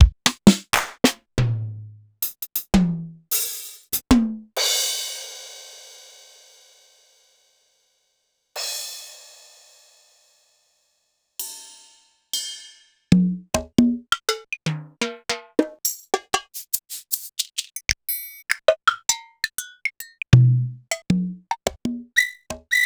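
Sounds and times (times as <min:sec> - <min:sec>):
Korg 01W synthesizer percussion sliced: 0:00.0 - 0:02.8, 0:03.4 - 0:04.3, 0:13.2 - 0:22.7.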